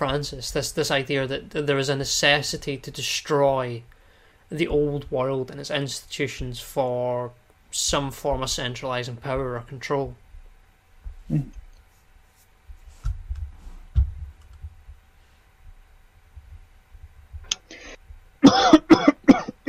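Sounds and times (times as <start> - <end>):
speech: 0.0 - 10.2, 11.3 - 11.6
soft low thumps: 4.6 - 5.4, 6.4 - 6.8, 7.8 - 11.8, 12.6 - 18.4
person coughing: 17.6 - 19.6.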